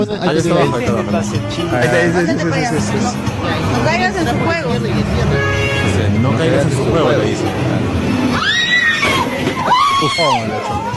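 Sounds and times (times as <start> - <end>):
speech: 0.0 - 8.0, 10.0 - 10.9
busy noisy background: 0.0 - 10.9
person screaming in a video clip: 8.3 - 10.5.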